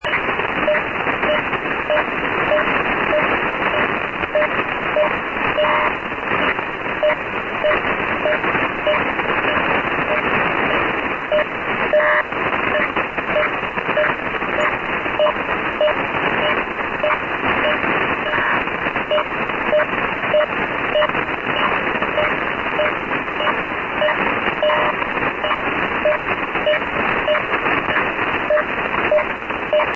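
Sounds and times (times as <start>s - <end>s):
Link11 data signal on 6940 kHz in USB mode: 0.0s - 29.9s.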